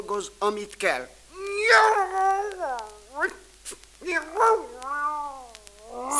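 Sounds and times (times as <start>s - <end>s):
speech: 0.1s - 2.3s, 3.2s - 5.0s
cat meowing: 1.4s - 3.4s, 4.1s - 6.1s.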